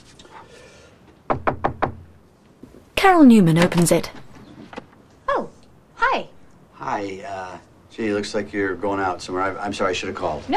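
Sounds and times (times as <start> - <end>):
knuckles knocking on a door of a snow-covered suburban house: 1.3 - 2.1
speech: 3.0 - 4.2, 6.9 - 10.5.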